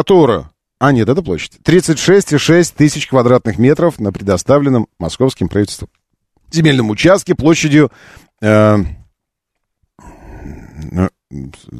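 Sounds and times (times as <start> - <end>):
speech: 0.0 - 9.0, 10.8 - 11.7
person yawning: 10.0 - 11.0.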